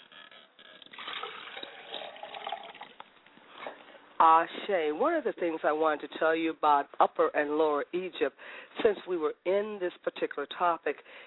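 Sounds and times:
liquid poured as a libation to the south: 0.7s - 3.8s
speech: 4.2s - 11.2s.

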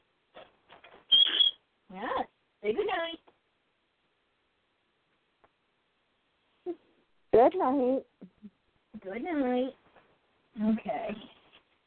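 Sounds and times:
pet bird giving short scratchy chirps: 1.1s - 1.6s
speech: 2.7s - 3.2s, 7.4s - 8.1s, 9.0s - 9.8s, 10.6s - 11.3s.

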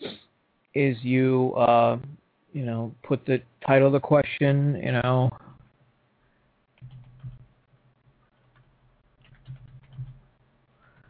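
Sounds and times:
speech: 0.8s - 5.4s
typing on a computer keyboard: 6.8s - 7.5s, 8.3s - 10.3s.

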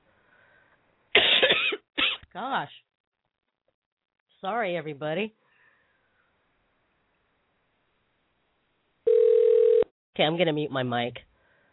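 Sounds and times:
person coughing harshly: 1.2s - 2.3s
speech: 2.4s - 2.9s, 4.4s - 5.4s, 10.2s - 11.3s.

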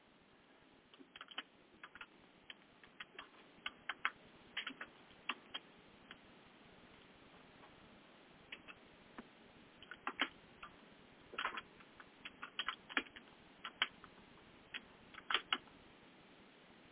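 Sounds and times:
typing on a computer keyboard: 0.9s - 6.2s, 8.5s - 8.8s, 9.8s - 14.1s, 14.7s - 15.7s.

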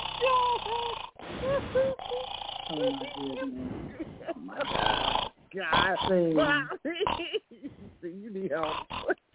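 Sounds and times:
person imitating snoring: 0.0s - 7.2s
speech: 5.6s - 6.8s, 8.5s - 9.0s.

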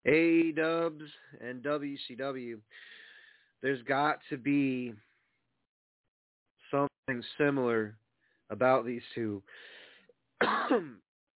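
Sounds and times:
speech: 0.0s - 3.0s, 3.6s - 5.1s, 6.7s - 9.7s, 10.4s - 11.0s
soft breathy lead-in: 2.7s - 3.6s, 5.0s - 5.4s, 8.1s - 8.5s, 9.5s - 10.1s
person giving a rasping cough: 10.4s - 11.0s
throaty clearing of the throat: 10.4s - 11.0s.

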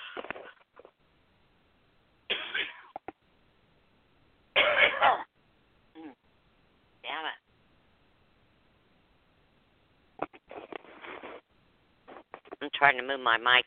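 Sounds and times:
person clearing throat: 2.3s - 3.0s, 4.6s - 5.3s
person coughing: 2.3s - 3.0s, 4.6s - 5.3s
speech: 12.8s - 13.6s.

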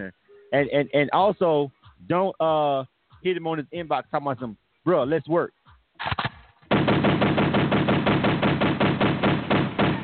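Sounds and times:
speech: 0.0s - 6.1s
gunfire sound effect shots: 6.0s - 10.0s
machine-gun burst: 6.0s - 10.0s.

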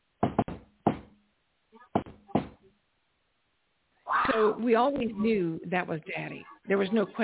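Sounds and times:
knocks on a hard surface imitating a pocket-knife knock on a door: 0.2s - 1.1s, 2.0s - 2.6s
speech: 4.4s - 7.2s.

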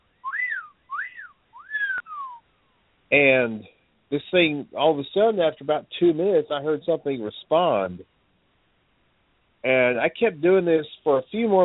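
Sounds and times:
person whistling a call at night: 0.2s - 2.4s
speech: 3.1s - 8.1s, 9.6s - 11.6s.

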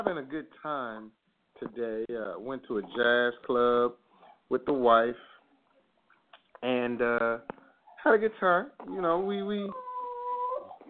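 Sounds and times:
speech: 0.0s - 5.3s, 6.6s - 9.9s
dog whimpering: 8.8s - 10.8s.

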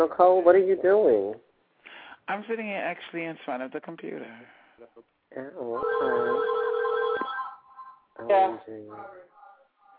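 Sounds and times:
speech: 0.0s - 1.5s, 2.3s - 6.7s, 8.2s - 9.3s
electronic telephone tone from a home alarm system picking up the phone line: 5.7s - 7.6s.

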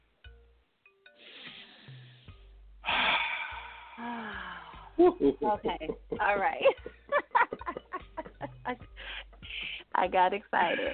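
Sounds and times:
person taking a deep breath: 1.2s - 4.9s, 9.0s - 9.8s
speech: 5.0s - 7.0s, 8.7s - 8.9s, 10.0s - 10.9s
laughter: 5.0s - 8.8s.

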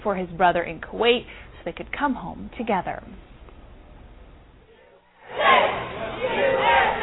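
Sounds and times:
speech: 0.0s - 3.3s
crowd cheering and shouting at homecoming: 5.2s - 7.0s.

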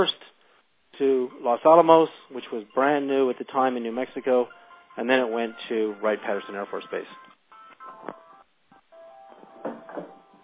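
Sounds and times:
speech: 1.0s - 7.2s
cell phone electronic ringtone: 4.0s - 10.4s.

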